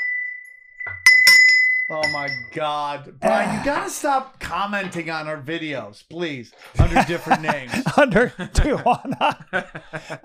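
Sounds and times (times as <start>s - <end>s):
bell dinging: 0.0s - 2.7s
speech: 1.9s - 10.2s
laughter: 3.2s - 4.0s, 6.7s - 10.2s.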